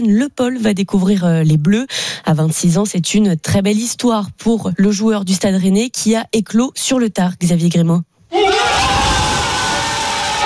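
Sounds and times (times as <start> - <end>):
speech: 0.0 - 8.9
teammates shouting and cheering for a national football team call-up: 8.3 - 10.4.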